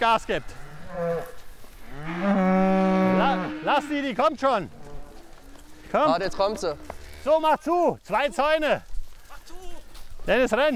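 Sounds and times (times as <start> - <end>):
speech: 0.0 - 2.4, 3.6 - 4.8, 5.9 - 8.9, 10.3 - 10.7
cow mooing while cattle and calves are herded between fences: 0.4 - 7.4.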